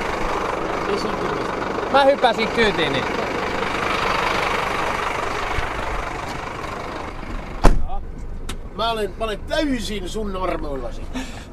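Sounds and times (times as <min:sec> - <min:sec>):
car engine rumbling inside moving vehicle: 0:00.0 - 0:11.5
speech: 0:00.9 - 0:03.3, 0:08.8 - 0:11.5
sharp knock or clunk: 0:07.6 - 0:07.9.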